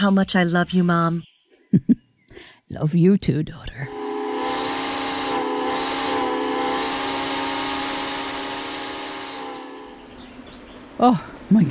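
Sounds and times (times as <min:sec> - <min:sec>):
speech: 0:00.0 - 0:01.9, 0:02.7 - 0:04.0, 0:11.0 - 0:11.6
vintage 1940s steam train whistle: 0:03.9 - 0:10.1.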